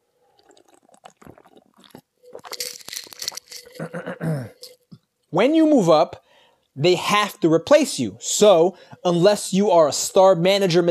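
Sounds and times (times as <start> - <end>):
wet sips and a swallow: 0.0 - 5.1
plastic bottle crinkling and rattling: 0.4 - 3.9
speech: 5.3 - 6.2, 6.8 - 10.8.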